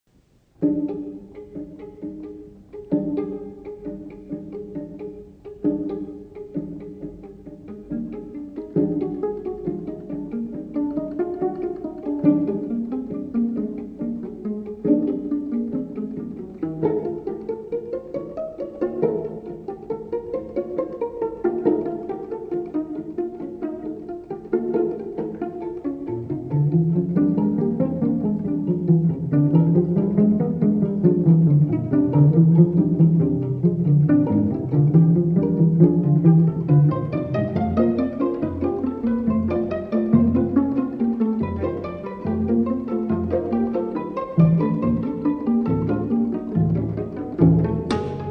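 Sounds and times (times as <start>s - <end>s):
string quartet playing allegretto pizzicato: 0.2s - 48.3s.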